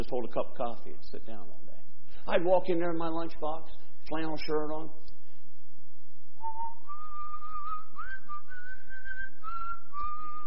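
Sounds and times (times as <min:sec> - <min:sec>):
speech: 0:00.0 - 0:05.0
person whistling a simple melody: 0:06.4 - 0:10.4.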